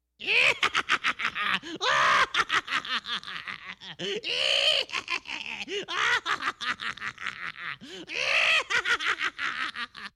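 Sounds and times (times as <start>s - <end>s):
witch cackling: 0.2s - 10.1s.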